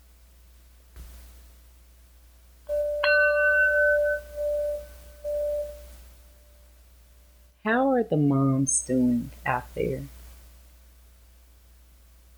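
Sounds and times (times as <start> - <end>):
faint low hum: 0.0 - 12.3
single bell ringing to begin mindfulness meditation: 2.7 - 6.0
speech: 8.0 - 10.2.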